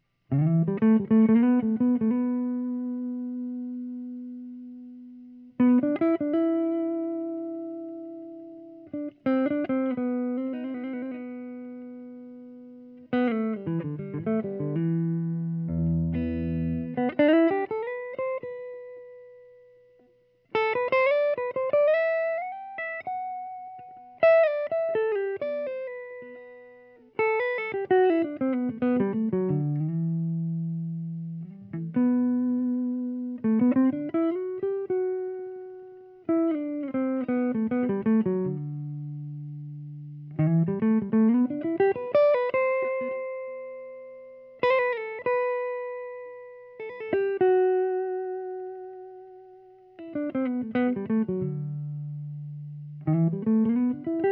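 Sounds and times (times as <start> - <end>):
slow improvised lead melody: 0.3 - 54.3.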